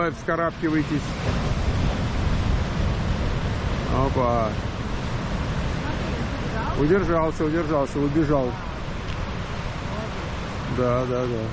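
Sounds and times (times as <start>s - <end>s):
speech: 0.0s - 1.7s, 3.9s - 4.7s, 6.6s - 8.7s, 10.7s - 11.5s
ocean waves breaking at a surf spot: 0.0s - 11.5s
wind noise: 0.0s - 11.5s.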